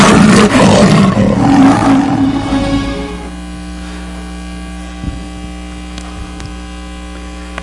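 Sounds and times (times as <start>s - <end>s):
loud deep lion roar: 0.0s - 3.3s
low steady hum: 0.0s - 7.6s.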